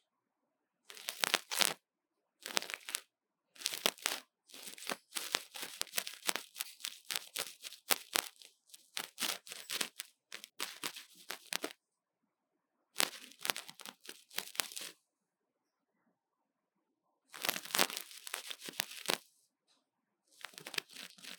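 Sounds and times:
crinkly scratching and rustling from ear cleaning: 0.9 - 1.8, 2.4 - 3.0, 3.6 - 11.7, 13.0 - 14.9, 17.4 - 19.2, 20.4 - 21.3.

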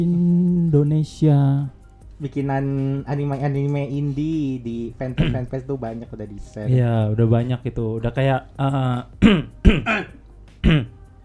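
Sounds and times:
speech: 0.0 - 10.9
person coughing after choking: 5.2 - 5.5, 9.2 - 11.0.

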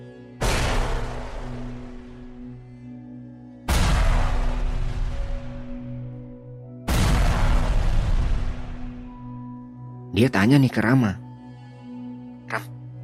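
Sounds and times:
heavy explosion booms in a forest: 0.4 - 2.3, 3.7 - 5.9, 6.9 - 9.1
speech: 10.2 - 11.2.

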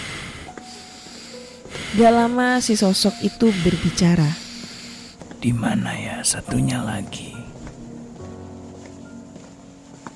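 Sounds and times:
heavy snorting breaths: 0.0 - 2.3, 3.0 - 5.3
speech: 1.9 - 4.4, 5.4 - 7.6.

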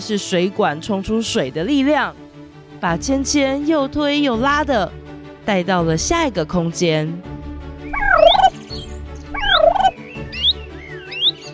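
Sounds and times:
speech: 0.0 - 2.2, 2.8 - 7.3
noisy chattering bird calls, gobbling and warbling: 7.9 - 11.5.

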